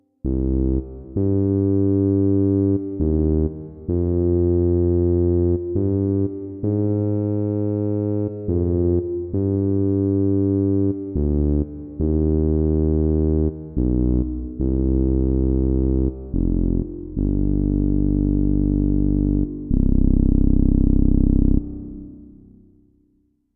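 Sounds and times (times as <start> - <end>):
dark synth bass: 0.2 - 22.8.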